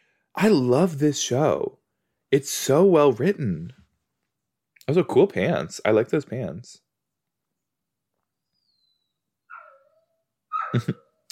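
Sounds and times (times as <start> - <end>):
speech: 0.4 - 3.8, 4.9 - 6.8, 10.7 - 11.2
golden retriever whining: 8.5 - 11.0.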